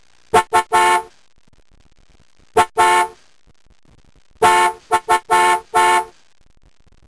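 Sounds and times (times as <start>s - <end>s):
car horns in Cairo Egypt: 0.4s - 1.1s, 2.6s - 3.2s, 4.4s - 6.2s.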